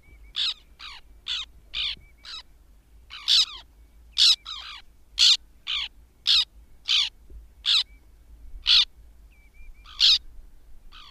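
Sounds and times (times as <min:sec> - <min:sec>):
white-winged tern grating calls: 0:00.4 - 0:02.5, 0:03.1 - 0:03.6, 0:04.2 - 0:07.9, 0:08.6 - 0:08.9, 0:09.8 - 0:10.2.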